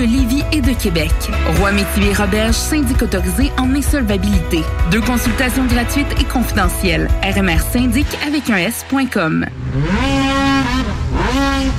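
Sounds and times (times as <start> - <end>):
speech: 0.0 - 11.0
snowmobiles racing on water at a provincial racing championship: 8.9 - 11.7.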